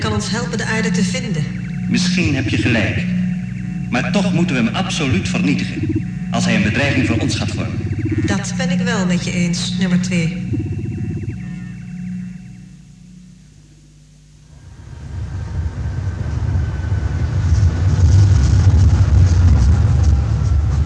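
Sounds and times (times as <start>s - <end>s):
low electric whine: 0.0s - 20.8s
speech: 0.2s - 3.2s, 3.9s - 10.6s
rumble and clatter of an underground train in motion: 14.9s - 20.8s.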